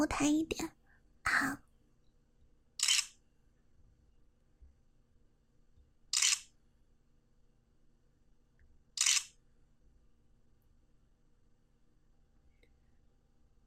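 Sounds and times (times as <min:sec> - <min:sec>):
speech: 0:00.0 - 0:01.7
faint low hum: 0:00.0 - 0:13.6
single-lens reflex camera shutter clicks during a portrait photo shoot: 0:02.8 - 0:03.2, 0:06.1 - 0:06.5, 0:09.0 - 0:09.4.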